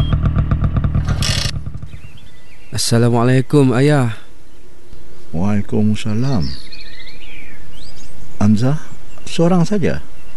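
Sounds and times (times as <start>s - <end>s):
motorcycle engine approaching with a steady low rumble: 0.0s - 2.9s
speech: 2.8s - 4.2s, 5.3s - 6.7s, 8.4s - 10.1s.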